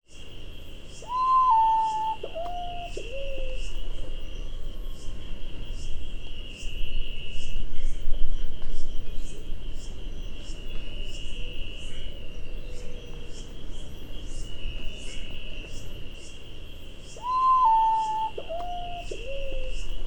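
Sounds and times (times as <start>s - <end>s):
Nyctibius griseus calling: 1.0s - 3.6s, 17.2s - 19.9s.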